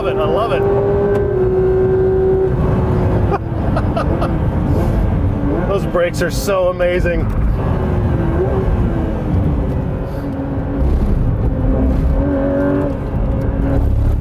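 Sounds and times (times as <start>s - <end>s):
speech: 0.0s - 1.0s, 6.0s - 7.8s
Porsche GT3 RS sports car engine driving: 0.0s - 14.1s.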